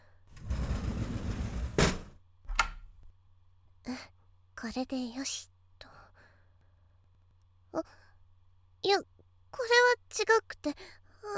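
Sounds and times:
door swinging shut: 0:01.5 - 0:02.8
speech: 0:04.6 - 0:05.5, 0:07.7 - 0:08.0, 0:08.8 - 0:11.3.

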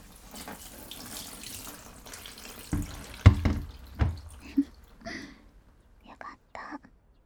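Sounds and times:
warm water running from a tap during hair washing: 0:00.0 - 0:05.4.

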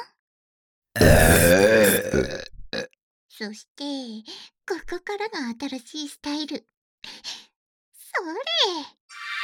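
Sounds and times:
four people burping simultaneously: 0:01.0 - 0:02.9
speech: 0:03.4 - 0:07.3, 0:08.1 - 0:09.0.

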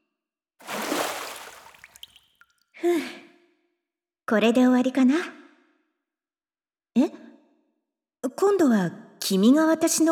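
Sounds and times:
hot water poured to rinse someone off: 0:00.6 - 0:02.4
speech: 0:02.8 - 0:03.2, 0:04.3 - 0:05.4, 0:08.6 - 0:10.0.

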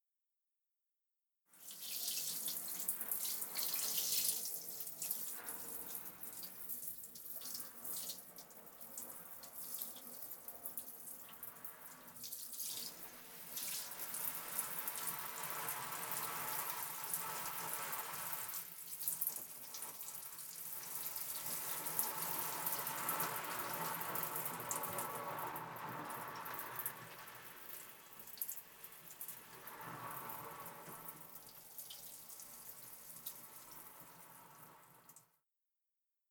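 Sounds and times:
water pouring to rinse someone's back: 0:01.6 - 0:34.6.

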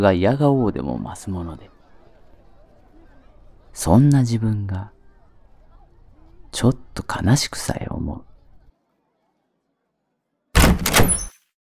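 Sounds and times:
speech: 0:00.0 - 0:01.7, 0:03.8 - 0:05.0, 0:06.5 - 0:08.3
door banging open forcefully: 0:10.6 - 0:11.4.

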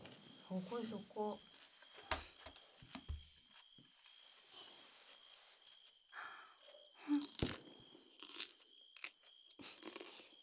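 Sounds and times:
speech: 0:00.5 - 0:01.6
crunchy food being bitten and chewed: 0:07.0 - 0:10.4.

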